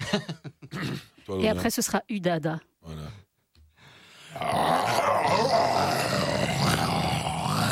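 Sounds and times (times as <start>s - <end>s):
speech: 0.1s - 2.7s, 4.4s - 5.9s
person imitating a lion's roar: 4.3s - 7.7s.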